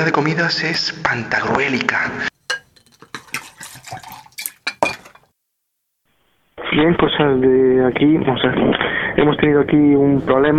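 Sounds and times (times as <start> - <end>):
speech: 0.0 - 2.3, 6.7 - 10.5
plates and cutlery clattering as tables are set for dinner in a large dining hall: 2.4 - 5.3.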